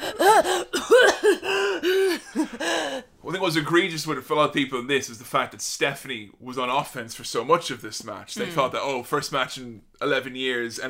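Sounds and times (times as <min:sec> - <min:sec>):
person imitating gagging and coughing: 0:00.0 - 0:02.6
speech: 0:03.5 - 0:10.8.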